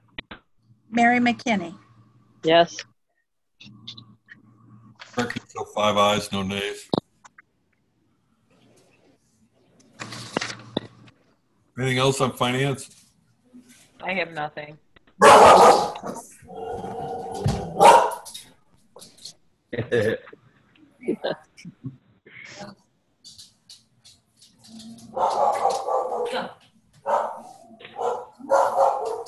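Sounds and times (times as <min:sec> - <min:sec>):
speech: 0:00.9 - 0:01.8, 0:02.4 - 0:02.9, 0:05.2 - 0:07.0, 0:11.8 - 0:13.0, 0:14.0 - 0:16.8, 0:19.7 - 0:20.3, 0:21.1 - 0:22.0, 0:25.1 - 0:26.5
dog barking: 0:15.2 - 0:16.9, 0:17.7 - 0:18.3, 0:25.1 - 0:29.2.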